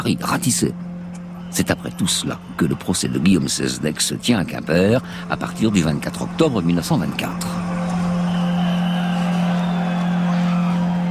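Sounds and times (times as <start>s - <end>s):
speech: 0.0s - 0.9s, 1.5s - 7.7s
steady low hum: 0.0s - 11.0s
dense agitated crowd shouting in the street: 1.1s - 3.7s, 5.7s - 11.0s.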